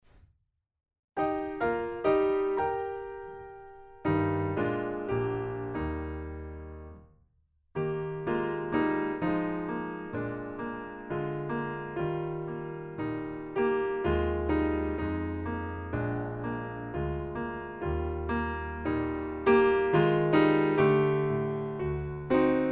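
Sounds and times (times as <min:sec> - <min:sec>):
piano backing track: 0:01.2 - 0:07.0, 0:07.8 - 0:22.7.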